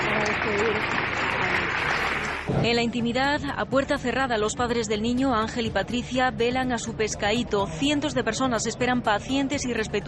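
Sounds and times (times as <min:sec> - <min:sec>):
crowd applauding a hearse arriving at a government building: 0:00.0 - 0:02.6
speech: 0:02.5 - 0:10.0.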